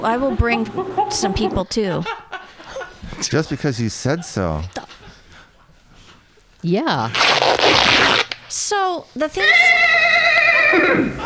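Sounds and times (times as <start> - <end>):
speech: 0.0 - 2.2, 3.2 - 4.8, 6.6 - 9.7, 10.7 - 11.2
laughter: 0.0 - 5.7, 9.8 - 11.2
loud horse whinny with quavering tone: 0.2 - 1.6, 9.4 - 11.2.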